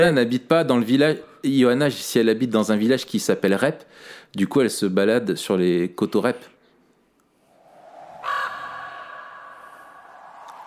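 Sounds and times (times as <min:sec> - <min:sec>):
speech: 0:00.0 - 0:06.5
crow cawing: 0:08.0 - 0:10.2.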